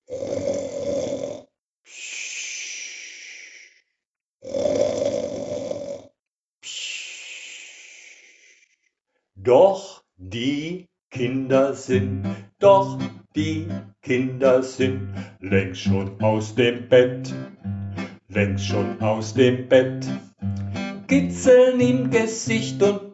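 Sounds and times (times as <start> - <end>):
loud rasping snoring: 0.0 - 1.5, 4.4 - 6.1
speech: 9.5 - 23.1.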